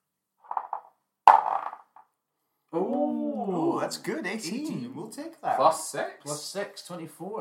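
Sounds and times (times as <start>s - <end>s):
twenty-sided die rattling on a table: 0.5s - 2.0s
speech: 2.7s - 7.3s.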